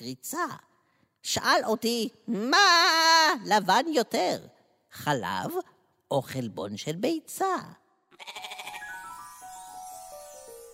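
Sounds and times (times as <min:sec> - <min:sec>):
speech: 0:00.0 - 0:08.4
goat bleating: 0:08.1 - 0:08.9.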